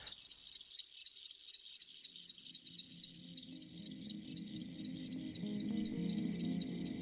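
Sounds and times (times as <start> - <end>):
chorus of crickets chirping: 0.0 - 6.9.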